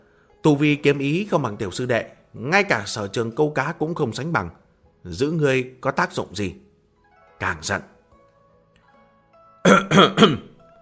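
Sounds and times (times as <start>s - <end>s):
speech: 0.4s - 6.7s, 7.4s - 7.9s, 9.6s - 10.5s
dry harsh coughing: 9.7s - 10.6s.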